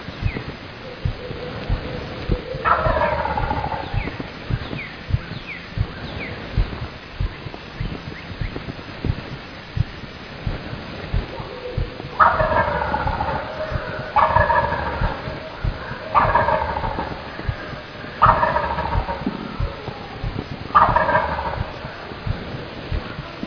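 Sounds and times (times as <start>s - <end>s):
constant outdoor wind noise: 0.0s - 23.4s
wild turkey gobbling: 0.2s - 7.4s, 11.1s - 22.5s.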